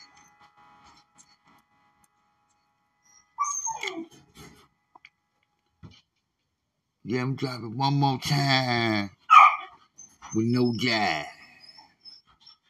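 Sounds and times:
dog yelping: 0:03.2 - 0:04.1, 0:09.3 - 0:12.6
speech: 0:07.1 - 0:09.2, 0:10.3 - 0:11.4
dog barking: 0:09.3 - 0:09.8.

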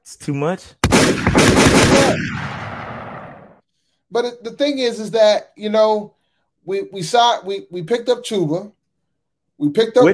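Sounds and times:
speech: 0:00.1 - 0:02.7, 0:04.1 - 0:08.8, 0:09.6 - 0:10.1
rapid overlapping gunshot sound effect with tail: 0:00.8 - 0:03.6.

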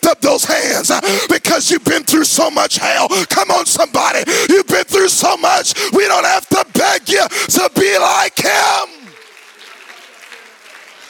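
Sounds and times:
speech: 0:00.1 - 0:09.2
crowd clapping: 0:07.4 - 0:11.0.

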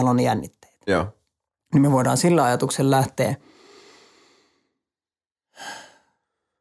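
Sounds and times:
speech: 0:00.0 - 0:03.5
sharp inhaled breath: 0:03.4 - 0:04.7, 0:05.6 - 0:06.2
slow breathy exhale of air: 0:03.4 - 0:04.8, 0:05.5 - 0:06.6.

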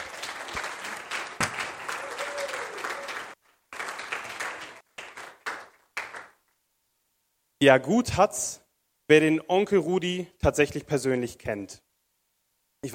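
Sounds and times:
audience applause for the actors: 0:00.0 - 0:06.4
speech: 0:07.6 - 0:11.8.

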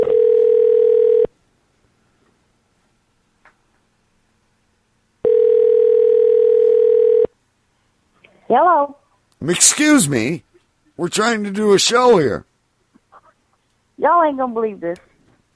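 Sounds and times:
phone ringback tone over the line: 0:00.0 - 0:01.3, 0:05.2 - 0:07.3
speech: 0:08.5 - 0:12.5, 0:14.0 - 0:15.1.

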